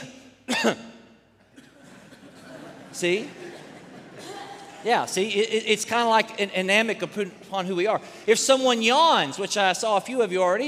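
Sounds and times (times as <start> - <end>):
person coughing: 0.5 - 1.8
speech: 0.6 - 0.9, 3.0 - 3.4, 4.8 - 10.6
laughter: 1.6 - 5.1.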